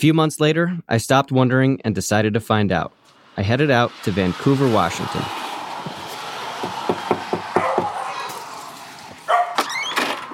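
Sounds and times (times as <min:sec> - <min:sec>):
speech: 0:00.0 - 0:06.0
outdoor hiss: 0:02.0 - 0:06.7
dog barking in Vancouver Washington: 0:07.5 - 0:08.5, 0:09.3 - 0:09.7.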